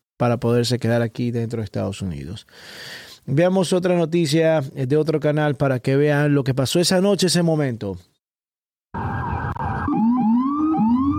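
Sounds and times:
speech: 0.2s - 8.1s
police siren wailing: 8.9s - 11.1s.

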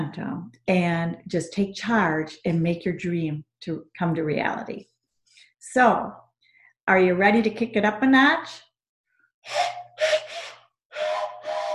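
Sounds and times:
speech: 0.1s - 4.9s, 5.6s - 6.2s, 6.9s - 8.7s, 9.4s - 10.2s
breathy train whistle blasts: 9.4s - 11.7s.

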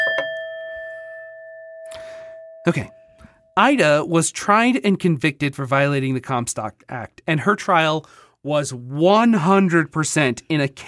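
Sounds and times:
bell ringing: 0.0s - 3.6s
speech: 2.6s - 3.0s, 3.6s - 10.8s.

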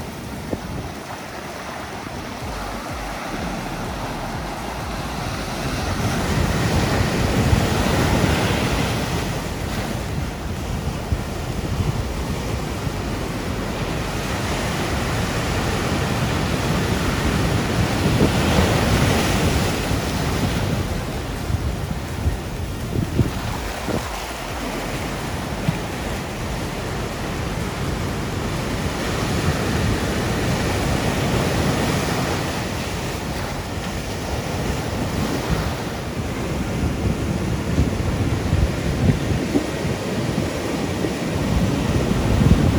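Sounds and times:
massive ocean surf rolling onto a long sandy beach on Oahu's North Shore, Hawaii: 0.0s - 42.7s
wind buffeting the microphone: 0.0s - 42.7s.

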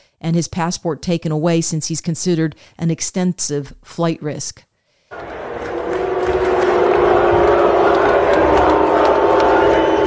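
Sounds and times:
speech: 0.2s - 5.4s
large football stadium crowd in Philadelphia booing: 5.1s - 10.0s.

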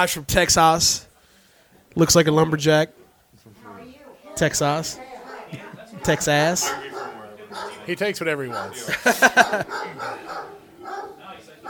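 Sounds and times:
speech: 0.0s - 1.1s, 2.0s - 3.0s, 4.4s - 6.9s, 7.5s - 10.5s
dog barking: 5.2s - 5.5s, 6.6s - 11.6s
laughter: 5.5s - 10.6s.

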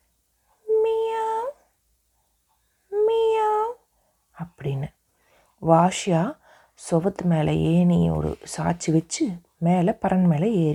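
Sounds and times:
person imitating a cat meow: 0.6s - 1.6s, 2.9s - 3.8s
speech: 4.6s - 5.0s, 5.6s - 10.7s.

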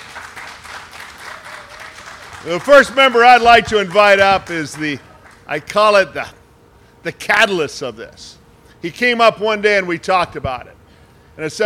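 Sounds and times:
crowd applauding: 0.0s - 5.8s
speech: 2.4s - 6.4s, 7.0s - 10.8s, 11.4s - 11.6s.

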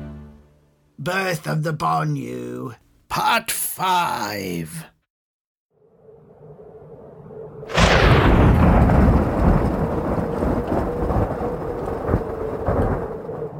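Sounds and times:
speech: 1.0s - 4.9s
thunder crash from lightning during a raging blizzard: 6.4s - 13.5s.

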